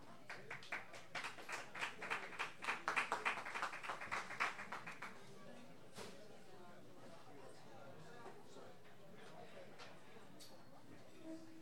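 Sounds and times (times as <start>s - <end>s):
modest crowd applauding in a room: 0.3s - 5.2s.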